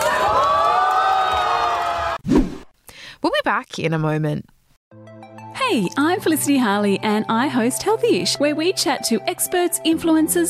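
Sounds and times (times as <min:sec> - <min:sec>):
crowd cheering and whooping at a Rubik's Cube world record: 0:00.0 - 0:02.2
speech: 0:03.5 - 0:04.6, 0:05.7 - 0:10.4.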